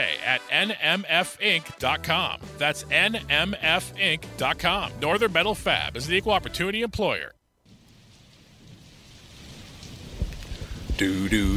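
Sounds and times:
speech: 0.3 - 7.4, 11.0 - 11.5
low rolling thunder: 7.7 - 11.5
steady rainfall hissing in a thunderstorm: 7.7 - 11.5.

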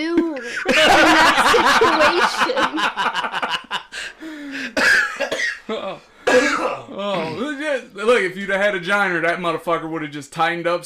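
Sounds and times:
laughter: 0.2 - 4.7
short raspy coughs: 4.6 - 7.5
throat clearing: 4.8 - 7.5
speech: 8.2 - 10.8.

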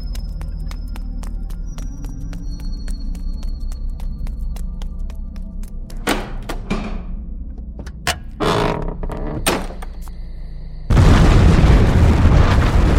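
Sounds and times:
heavy booming explosion blasts and thuds: 10.9 - 12.9
loud sustained roar of crackling fire from explosion: 10.9 - 12.9.

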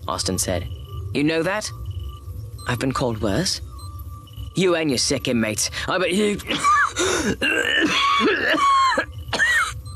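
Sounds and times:
speech: 0.1 - 1.8, 2.6 - 3.7, 4.6 - 9.1
man coughing hard in a rapid fit: 6.4 - 9.8.

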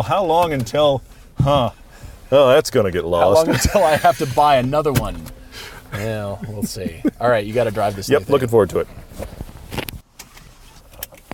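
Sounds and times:
speech: 0.0 - 9.4
laughter: 3.2 - 4.7, 5.8 - 8.6
truck door closing with a solid thunk: 3.5 - 6.3.

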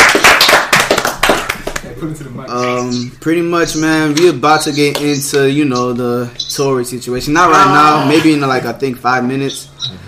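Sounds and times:
rapid hand clapping from a small group: 0.0 - 2.0, 4.2 - 5.4
speech: 2.0 - 10.0.

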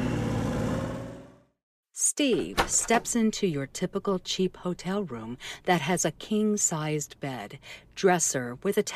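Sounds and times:
car engine revving as the car pulls away up a street: 0.0 - 1.5
speech: 2.1 - 8.9.

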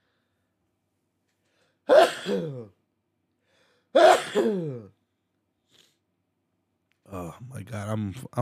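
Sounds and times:
person sneezing: 1.9 - 2.8, 4.0 - 4.9
speech: 2.2 - 2.8, 3.9 - 4.9, 7.1 - 8.4.

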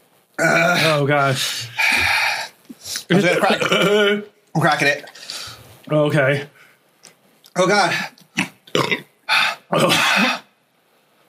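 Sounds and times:
speech: 0.4 - 2.1, 3.1 - 5.1, 5.9 - 6.6, 7.6 - 8.1, 8.8 - 10.4
person hiccuping after eating spicy food: 3.4 - 4.3, 8.4 - 10.5.

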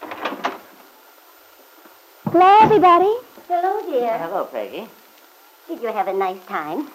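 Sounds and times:
front door swinging open: 2.3 - 3.1
speech: 2.3 - 5.0, 5.7 - 6.9.

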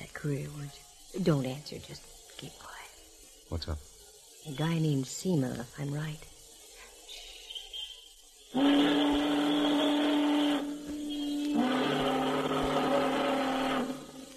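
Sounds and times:
speech: 0.2 - 2.8, 3.5 - 6.3
whistle blasts: 8.5 - 14.3.

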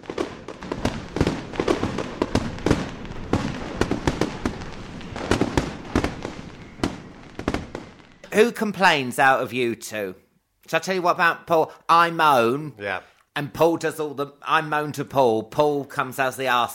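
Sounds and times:
fireworks going off in a dense continuous barrage: 0.0 - 9.0
speech: 8.4 - 16.7.

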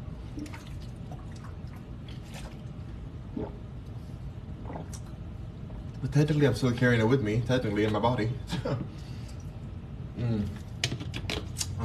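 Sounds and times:
steady low rumble: 0.0 - 10.9
person drinking spring water with gulps and slurps: 0.3 - 6.0
speech: 6.1 - 9.0.

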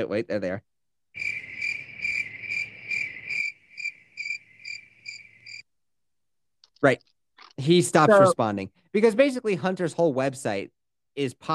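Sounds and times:
speech: 0.0 - 1.4, 6.8 - 11.5
crickets chirping: 1.2 - 5.7.

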